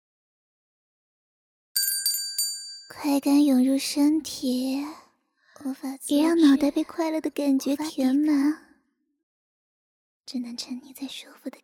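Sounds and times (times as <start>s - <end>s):
small bell ringing: 1.8s - 3.1s
speech: 3.0s - 5.0s, 5.6s - 8.6s, 10.3s - 11.6s.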